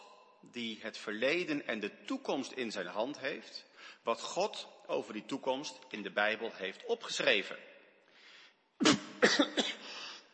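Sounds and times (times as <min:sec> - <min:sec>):
speech: 0:00.5 - 0:07.7, 0:08.8 - 0:09.8
person coughing harshly with a lingering cough: 0:08.8 - 0:10.0.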